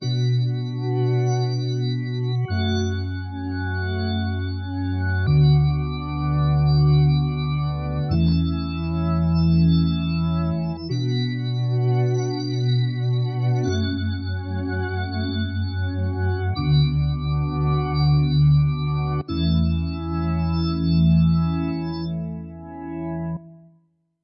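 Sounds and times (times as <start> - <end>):
Lowrey theatre organ: 0.0 - 23.4.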